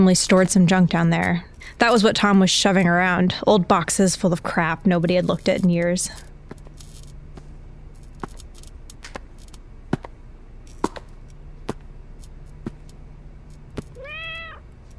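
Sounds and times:
speech: 0:00.0 - 0:06.3
faint low hum: 0:00.0 - 0:14.9
black kitten meowing on a workbench: 0:14.0 - 0:14.6.

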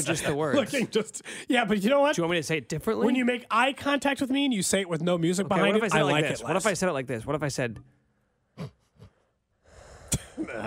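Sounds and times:
speech: 0:00.0 - 0:08.0, 0:08.6 - 0:08.8, 0:10.4 - 0:10.6
heavy breathing into a microphone: 0:08.6 - 0:10.4.

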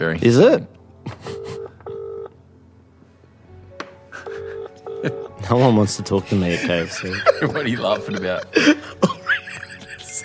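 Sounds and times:
speech: 0:00.0 - 0:01.3, 0:05.0 - 0:09.1
telephone dialing tones over a phone line: 0:01.3 - 0:02.3, 0:04.3 - 0:05.3
laughter: 0:04.2 - 0:10.2.

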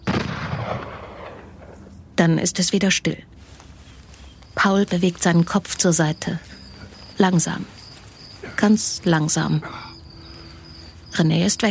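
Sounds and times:
booming gunshot echo across open space: 0:00.0 - 0:01.7
distant gunshot: 0:00.0 - 0:01.8
speech: 0:02.2 - 0:03.4, 0:04.6 - 0:06.5, 0:07.2 - 0:07.8, 0:08.6 - 0:09.9, 0:11.2 - 0:11.7.

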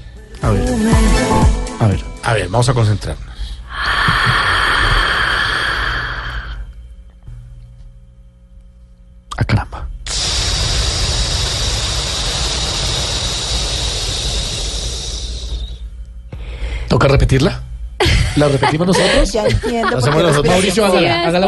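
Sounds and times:
speech: 0:00.4 - 0:03.3, 0:17.0 - 0:17.6, 0:18.4 - 0:21.4
forceful snort-like inhale of yogic cobra breathing: 0:03.2 - 0:06.7, 0:10.1 - 0:16.9
rushing exhale of yogic cobra breathing: 0:03.3 - 0:06.7, 0:10.1 - 0:16.9
laughter: 0:18.0 - 0:21.4.

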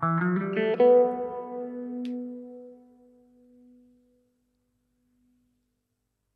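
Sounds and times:
plucked notes on a stringed instrument: 0:00.0 - 0:03.8.

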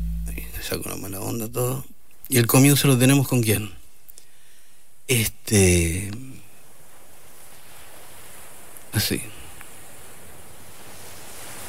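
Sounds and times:
speech: 0:00.7 - 0:03.8, 0:05.1 - 0:06.4, 0:08.9 - 0:09.4
sea waves washing: 0:06.3 - 0:11.6.

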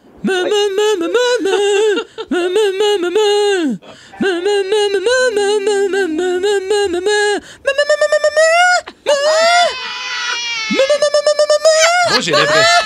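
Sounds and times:
laughter: 0:00.2 - 0:03.5, 0:04.2 - 0:12.8
person humming a song imitating cow moos: 0:00.2 - 0:08.5
speech: 0:12.2 - 0:12.8.

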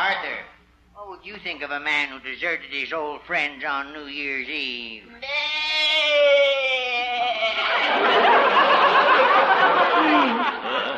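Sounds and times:
speech: 0:01.2 - 0:06.5
goat bleating: 0:05.2 - 0:07.5
laughter: 0:07.2 - 0:10.9.

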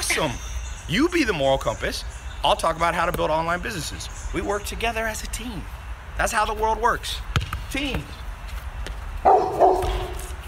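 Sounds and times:
speech: 0:00.2 - 0:08.2
dog barking: 0:09.2 - 0:10.3.

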